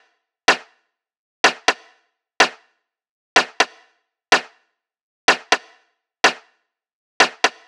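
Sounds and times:
snare drum loop: 0:01.5 - 0:02.6, 0:03.4 - 0:04.5, 0:05.3 - 0:06.4, 0:07.2 - 0:07.6.

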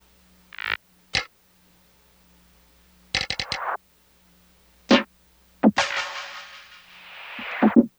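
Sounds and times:
drum percussion: 0:03.2 - 0:03.8, 0:04.9 - 0:07.9.

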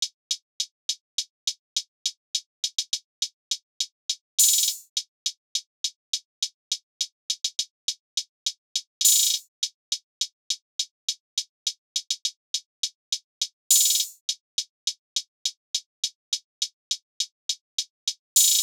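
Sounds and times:
rnb trap hi-hat loop: 0:00.0 - 0:18.6.

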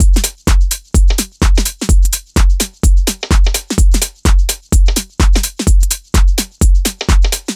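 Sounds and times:
full drum beat: 0:00.0 - 0:07.5.

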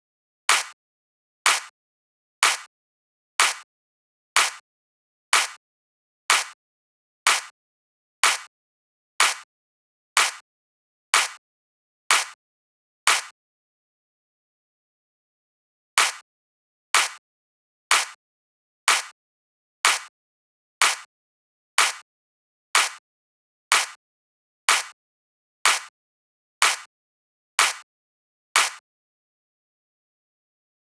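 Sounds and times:
drum clap at 124 BPM: 0:00.5 - 0:00.8, 0:01.5 - 0:01.7, 0:02.4 - 0:02.7, 0:03.4 - 0:03.7, 0:04.4 - 0:04.6, 0:05.3 - 0:05.6, 0:06.3 - 0:06.6, 0:07.3 - 0:07.5, 0:08.2 - 0:08.5, 0:09.2 - 0:09.5, 0:10.2 - 0:10.4, 0:11.1 - 0:11.4, 0:12.1 - 0:12.4, 0:13.1 - 0:13.3, 0:16.0 - 0:16.2, 0:17.0 - 0:17.2, 0:17.9 - 0:18.2, 0:18.9 - 0:19.1, 0:19.8 - 0:20.1, 0:20.8 - 0:21.1, 0:21.8 - 0:22.0, 0:22.8 - 0:23.0, 0:23.7 - 0:24.0, 0:24.7 - 0:25.0, 0:25.6 - 0:25.9, 0:26.6 - 0:26.9, 0:27.6 - 0:27.8, 0:28.6 - 0:28.8.

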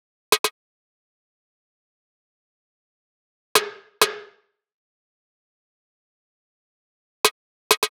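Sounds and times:
offbeat snare loop at 130 bpm: 0:00.3 - 0:00.5, 0:07.2 - 0:07.9.

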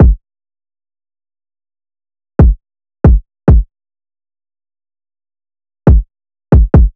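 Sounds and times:
dark drill kick drum: 0:00.0 - 0:00.2, 0:02.4 - 0:03.7, 0:05.9 - 0:06.9.

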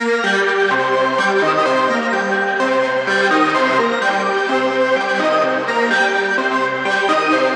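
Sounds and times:
plucked ambient RnB melody loop at 127 BPM: 0:00.0 - 0:07.5.

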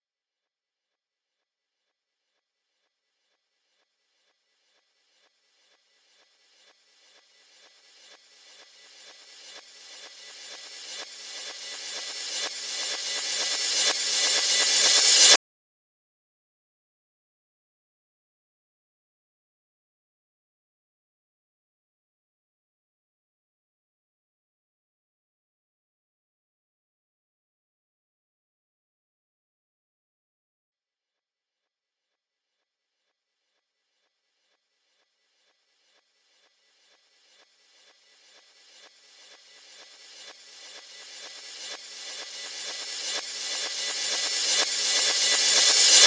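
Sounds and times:
reverse cymbal: 0:06.6 - 0:15.4, 0:37.7 - 0:46.0.

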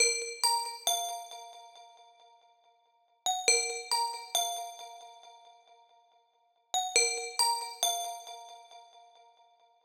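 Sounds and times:
bell in A minor: 0:00.0 - 0:02.3, 0:03.3 - 0:05.8, 0:06.8 - 0:09.4.

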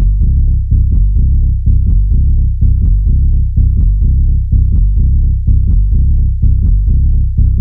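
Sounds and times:
bass E note: 0:00.0 - 0:07.5.

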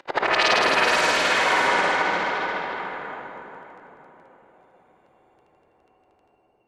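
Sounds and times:
stutter down effect: 0:00.0 - 0:04.5.

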